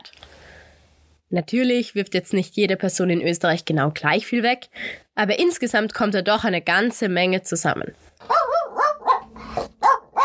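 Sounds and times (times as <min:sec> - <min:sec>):
speech: 0:01.3 - 0:08.4
dog barking: 0:08.2 - 0:10.2.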